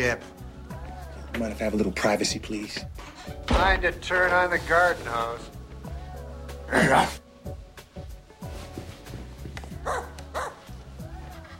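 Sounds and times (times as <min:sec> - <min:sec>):
speech: 0:00.0 - 0:00.4, 0:01.4 - 0:05.5, 0:06.7 - 0:07.6
dog barking: 0:09.8 - 0:10.6.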